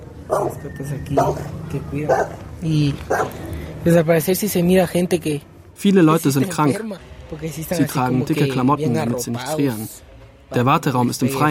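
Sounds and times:
dog barking at an outdoor health centre: 0:00.3 - 0:00.6, 0:01.2 - 0:01.5, 0:02.1 - 0:02.4, 0:03.1 - 0:03.4
speech: 0:00.3 - 0:11.5.

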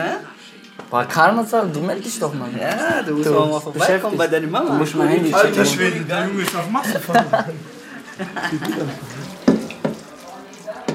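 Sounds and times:
speech: 0:00.9 - 0:09.2
laughter: 0:06.6 - 0:09.5
onions and minced meat frying in a pan: 0:07.6 - 0:10.9
utensil clacking against a pan: 0:08.7 - 0:10.9.

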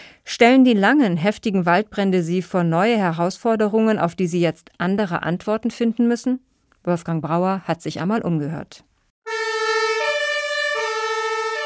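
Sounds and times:
speech: 0:00.4 - 0:08.9
fire engine siren being tested before delivery on factory grounds: 0:09.2 - 0:11.6.

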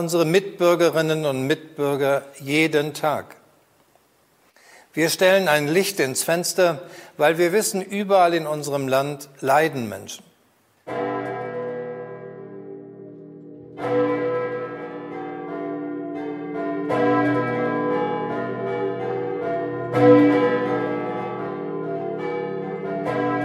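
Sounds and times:
speech: 0:00.0 - 0:03.4, 0:05.0 - 0:10.3, 0:10.9 - 0:11.1
all church bells of the city ringing in memory of COVID-19 dead: 0:10.9 - 0:23.4.

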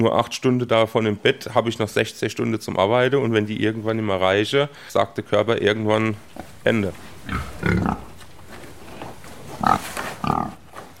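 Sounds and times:
speech: 0:00.0 - 0:08.0
pigs shuffling: 0:05.6 - 0:10.9
pigs snuffling: 0:06.1 - 0:10.9
several pigs grunting at feeding: 0:07.2 - 0:08.2, 0:08.8 - 0:10.7.

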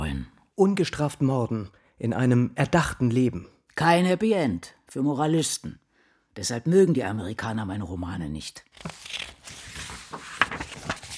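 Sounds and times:
speech: 0:00.2 - 0:05.8, 0:06.4 - 0:09.2
pages of an old book being leafed through: 0:08.8 - 0:11.1.

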